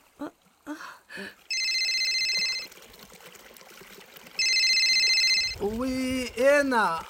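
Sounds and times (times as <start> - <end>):
speech: 0.2 - 1.4, 5.6 - 7.0
telephone ringing inside a torn vest pocket: 1.5 - 2.7, 4.4 - 5.6.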